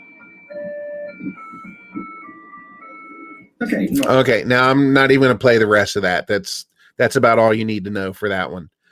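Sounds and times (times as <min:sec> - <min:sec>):
Japanese pedestrian crossing signal playing an electronic melody: 0:00.0 - 0:04.2
speech: 0:01.2 - 0:01.5, 0:03.6 - 0:08.8.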